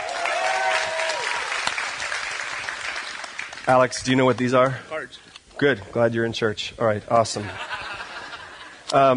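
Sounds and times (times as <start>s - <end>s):
audience applause: 0.0s - 4.5s
speech: 3.7s - 7.8s, 8.9s - 9.1s
laughter: 7.4s - 8.8s.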